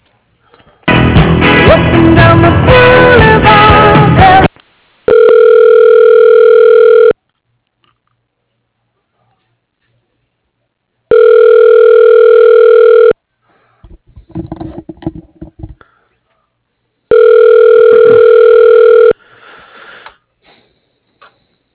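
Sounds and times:
telephone hold music: 0.9 - 4.5
telephone line ringback tones while caller is transferred to voicemail: 5.1 - 7.2, 11.1 - 13.2, 17.1 - 19.2
faint clatter: 13.8 - 15.8.

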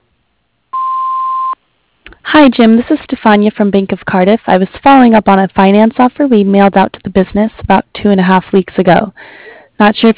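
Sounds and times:
answering machine voicemail beep: 0.8 - 1.6
speech: 2.3 - 10.1.

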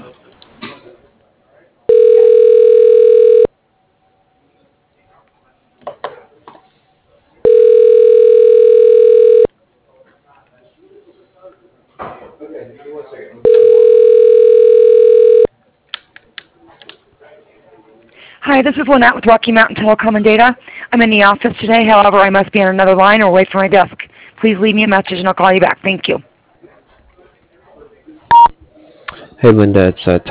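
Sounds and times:
telephone ringback tones while a call is transferred: 1.9 - 3.5, 7.4 - 9.5, 13.4 - 15.5
speech: 18.6 - 26.3, 29.4 - 30.3.

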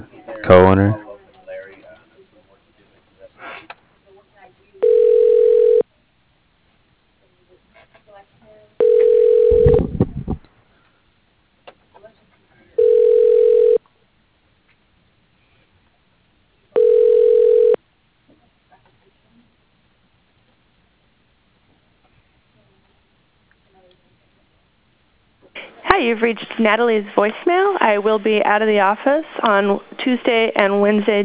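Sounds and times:
speech: 0.0 - 1.0, 26.2 - 31.2
faint low noises: 0.0 - 31.2
telephone ringback tones while a call is transferred to an office extension: 4.8 - 5.8, 8.8 - 9.8, 12.8 - 13.8, 16.8 - 17.8.

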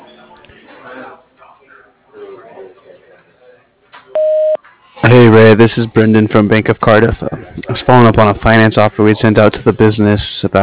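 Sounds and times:
loud steady single-pitch voicemail beep: 4.2 - 4.6
speech: 5.1 - 10.6.

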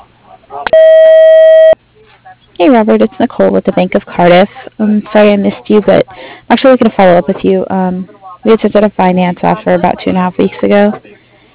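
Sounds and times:
answering machine beep: 0.7 - 1.8
speech: 2.6 - 11.2.

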